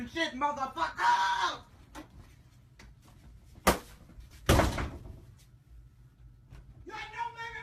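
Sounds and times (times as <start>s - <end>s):
speech: 0.1s - 1.2s
someone hitting a door with thumps and bangs: 3.6s - 5.3s.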